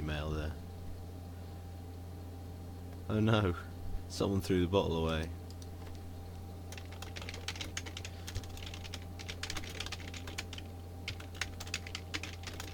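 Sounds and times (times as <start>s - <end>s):
steady low electrical hum: 0.0s - 12.7s
speech: 3.1s - 5.4s
computer keyboard typing: 6.7s - 12.7s.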